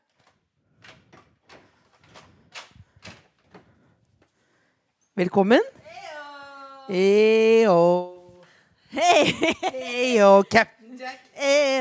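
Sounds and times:
front door creaking as it swings: 0:00.0 - 0:04.6
speech: 0:05.2 - 0:05.8, 0:06.9 - 0:08.1, 0:08.9 - 0:11.7
laughter: 0:08.9 - 0:10.6.

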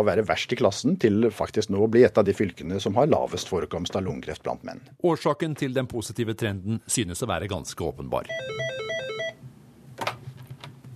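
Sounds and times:
speech: 0:00.0 - 0:08.8
telephone at a helpline ringing with bright electronic trilling tone: 0:08.3 - 0:09.4.

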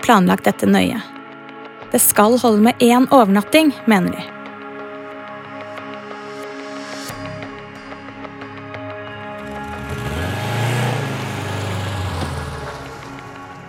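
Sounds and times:
speech: 0:00.1 - 0:01.2, 0:01.9 - 0:04.4
armored cars with heavy engines driving past: 0:09.4 - 0:13.6.

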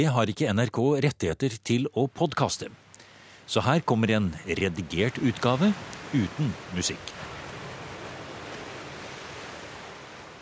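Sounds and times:
speech: 0:00.0 - 0:02.8, 0:03.5 - 0:07.1
lake waves rolling onto the shore: 0:01.7 - 0:10.3
faint wind-like hiss: 0:02.6 - 0:10.3.

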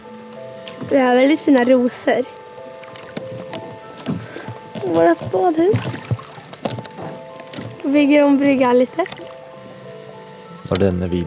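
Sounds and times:
faint steady hum: 0:00.0 - 0:11.2
speech: 0:00.8 - 0:02.4, 0:04.9 - 0:06.0, 0:07.9 - 0:09.2, 0:10.7 - 0:11.2
water sloshing and lapping against a small boat: 0:02.8 - 0:09.4
soft knocks: 0:03.0 - 0:07.8.

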